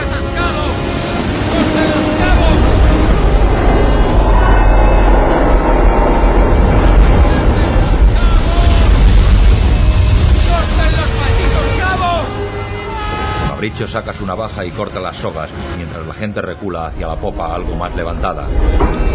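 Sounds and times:
wind: 0:00.0 - 0:14.0
ocean waves crashing over the upper deck of a boat listing to port: 0:00.0 - 0:14.9
indistinct voices: 0:00.0 - 0:18.7
speech: 0:13.8 - 0:19.1.

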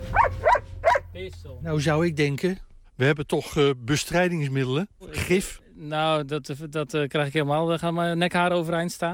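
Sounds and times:
farm watchdog barking: 0:00.1 - 0:01.1
speech: 0:01.2 - 0:09.1.

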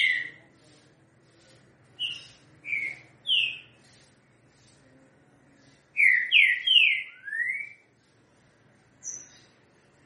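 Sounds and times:
green-winged saltator giving slurred whistled notes: 0:02.0 - 0:03.7, 0:06.0 - 0:07.8.

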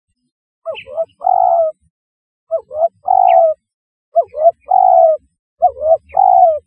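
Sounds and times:
spotted dove cooing: 0:00.7 - 0:01.8, 0:02.5 - 0:03.6, 0:04.2 - 0:06.6.

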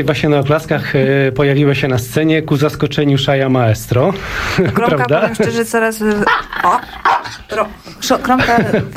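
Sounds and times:
speech: 0:00.0 - 0:08.9
dog barking on a stage: 0:06.2 - 0:07.4.

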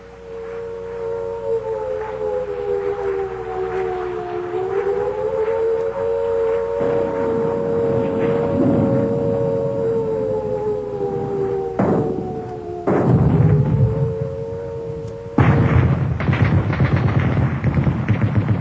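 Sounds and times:
steady wailing siren tone: 0:00.0 - 0:18.5
artillery fire in a battle: 0:11.8 - 0:12.2, 0:12.8 - 0:13.8, 0:15.4 - 0:18.5
gunfire in a battle: 0:12.8 - 0:13.7, 0:15.4 - 0:18.5.

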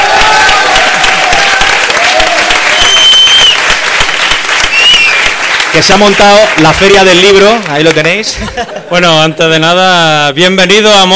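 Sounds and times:
audience applauding a panel guest at a live event: 0:00.0 - 0:08.6
crowd noise at a live event: 0:00.0 - 0:11.1
speech: 0:05.8 - 0:11.1
laughter: 0:08.2 - 0:09.4.

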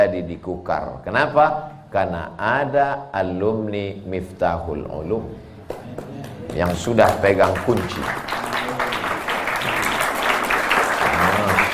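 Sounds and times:
speech: 0:00.0 - 0:08.7
crowd applause: 0:06.0 - 0:11.7.

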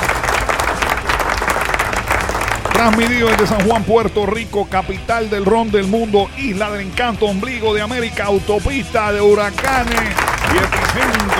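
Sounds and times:
crowd applause: 0:00.0 - 0:03.9, 0:09.5 - 0:11.3
speech: 0:02.8 - 0:11.3.

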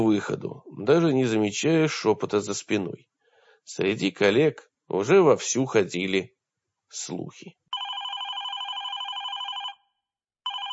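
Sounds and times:
speech: 0:00.0 - 0:07.6
telephone ringing at home with electronic trill: 0:07.7 - 0:10.7.

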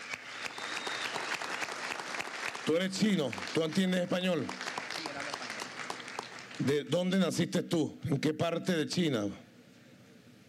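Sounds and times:
audience applause greeting young entrepreneurs: 0:00.0 - 0:06.7
speech: 0:02.7 - 0:04.7, 0:06.6 - 0:09.4.

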